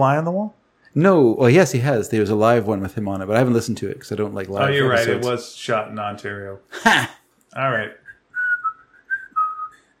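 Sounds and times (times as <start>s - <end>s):
speech: 0.0s - 8.0s
person whistling tunelessly: 8.0s - 9.9s.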